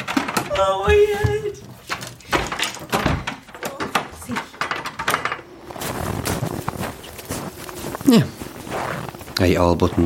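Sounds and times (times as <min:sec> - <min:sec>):
door opening and shutting: 0:00.0 - 0:05.6
clattering knocking noises: 0:00.0 - 0:05.7
bustling movement: 0:00.0 - 0:10.0
speech: 0:00.6 - 0:01.3, 0:08.1 - 0:08.3, 0:09.4 - 0:10.0.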